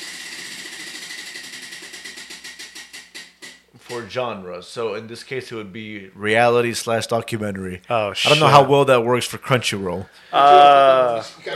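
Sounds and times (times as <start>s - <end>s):
spinning prize wheel ticking: 0.0s - 3.6s
hiss: 3.7s - 11.5s
speech: 3.9s - 11.5s.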